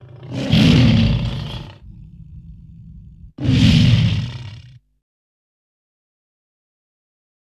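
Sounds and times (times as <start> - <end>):
lion growling: 0.0 - 4.8.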